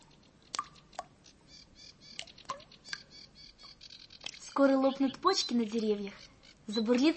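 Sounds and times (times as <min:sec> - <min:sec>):
melting snow dripping outdoors: 0:00.0 - 0:01.4, 0:02.0 - 0:05.4
speech: 0:04.6 - 0:07.1.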